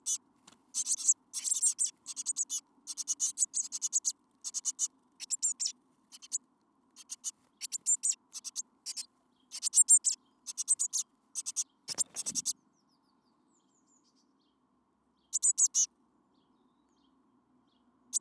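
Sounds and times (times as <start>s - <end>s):
Eurasian blue tit Cyanistes caeruleus high thin call notes: 0.8s - 6.4s, 7.0s - 12.5s, 15.4s - 15.9s.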